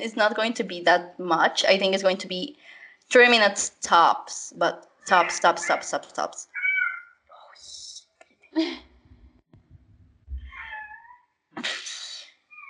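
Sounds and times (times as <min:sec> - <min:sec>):
speech: 0:00.0 - 0:06.5, 0:08.6 - 0:08.9
cat meowing: 0:05.1 - 0:07.1, 0:10.4 - 0:11.3
low thumps: 0:08.9 - 0:10.6.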